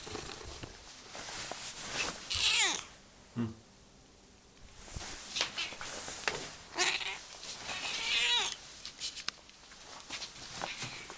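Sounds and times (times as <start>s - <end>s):
rustling: 0.0s - 2.9s, 4.6s - 11.1s
cat meowing: 2.3s - 2.9s, 6.7s - 8.6s.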